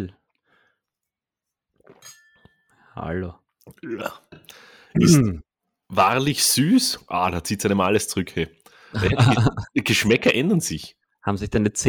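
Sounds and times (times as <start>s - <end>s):
glasses clinking in a toast: 1.8s - 2.7s
speech: 3.0s - 11.8s
laughter: 9.0s - 10.1s.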